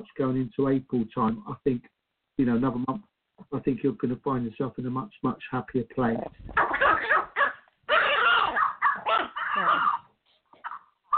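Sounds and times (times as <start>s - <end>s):
speech: 0.1s - 7.2s
tiny dog barking at a cat: 6.6s - 10.0s, 10.6s - 11.1s.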